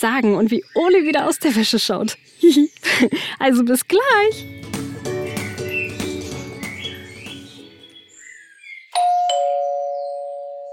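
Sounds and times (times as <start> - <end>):
speech: 0.0 - 4.6
birds chirping: 0.0 - 10.4
bright music: 4.3 - 8.1
doorbell chiming with two ringing tones: 9.0 - 10.7.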